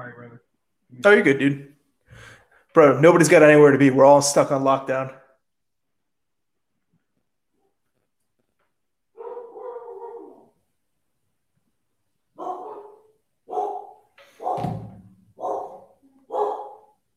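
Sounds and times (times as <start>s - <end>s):
speech: 0.0s - 1.7s, 2.8s - 5.2s
dogs barking at home: 9.2s - 10.6s, 12.4s - 17.0s.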